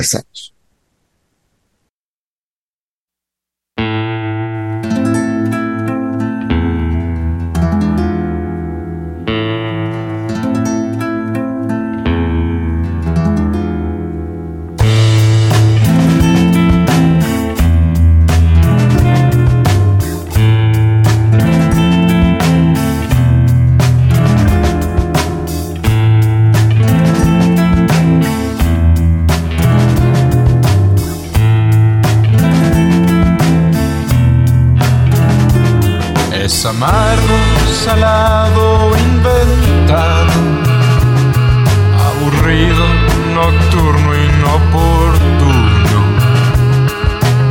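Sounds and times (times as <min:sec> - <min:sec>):
speech: 0:00.0 - 0:00.6
rock band playing: 0:03.8 - 0:47.5
sparse repeating guitar figure: 0:14.8 - 0:47.5.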